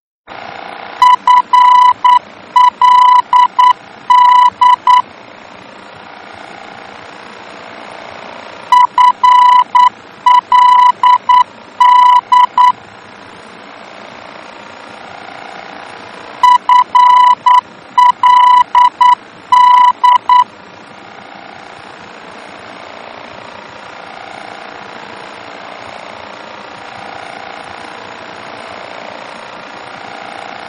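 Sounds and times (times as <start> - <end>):
VOR aeronautical radio beacon morse tones in Germany: 1.0 - 5.0, 8.7 - 12.8, 16.4 - 20.5.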